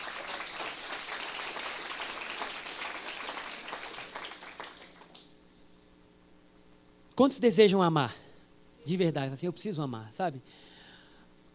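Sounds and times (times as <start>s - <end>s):
crowd applauding: 0.0s - 5.2s
speech: 7.2s - 8.2s, 8.8s - 10.7s.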